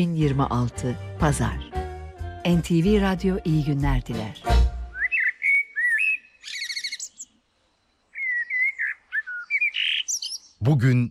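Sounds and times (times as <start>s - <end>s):
speech: 0.0s - 1.8s, 2.4s - 4.5s, 10.6s - 11.1s
common blackbird singing: 4.9s - 11.1s.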